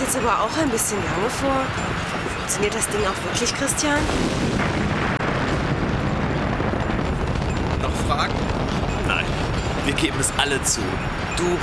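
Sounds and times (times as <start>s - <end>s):
speech: 0.1s - 4.9s, 9.9s - 11.6s
loud bomb explosion: 4.0s - 11.6s.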